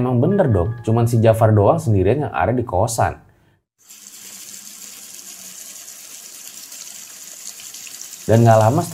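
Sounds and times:
speech: 0.0s - 4.0s, 8.3s - 8.9s
kitchen faucet running into the dish-washing sink: 3.8s - 8.9s.

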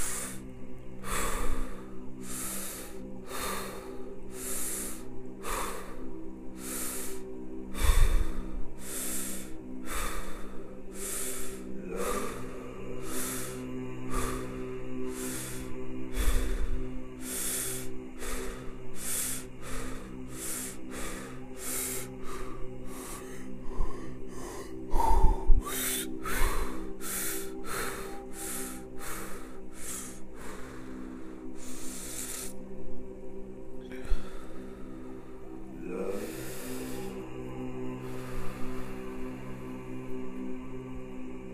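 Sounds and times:
deep rhythmic breathing during a breathing exercise: 0.0s - 41.5s
low steady hum: 0.0s - 41.5s.

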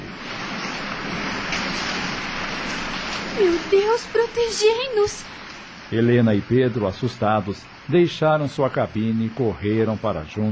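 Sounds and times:
wind-like rush: 0.0s - 6.5s
heavy rain from a violent storm at sea: 0.0s - 10.5s
speech: 3.4s - 5.3s, 5.9s - 10.5s.

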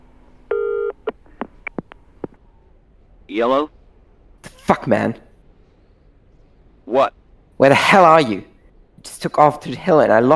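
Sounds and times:
short electronic phone tone: 0.5s - 1.9s
speech: 3.3s - 3.8s, 4.7s - 5.2s, 6.9s - 8.5s, 9.1s - 10.3s.

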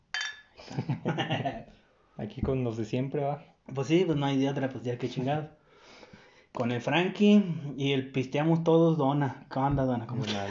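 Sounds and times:
glasses clinking in a toast: 0.0s - 0.6s
laughter: 0.6s - 1.7s
speech: 0.8s - 1.5s, 2.2s - 5.6s, 6.6s - 10.4s.

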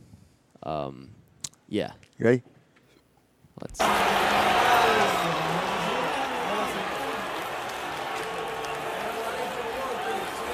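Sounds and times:
speech: 0.6s - 2.6s, 3.6s - 4.5s
large baseball stadium crowd murmuring and cheering: 3.8s - 10.5s.

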